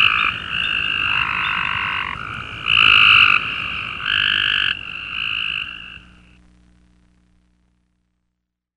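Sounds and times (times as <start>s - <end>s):
Cope's gray treefrog chorus trilling: 0.0s - 6.4s.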